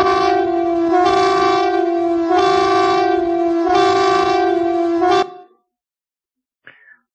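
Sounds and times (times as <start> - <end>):
civil defense air raid warning siren: 0.0 - 5.6.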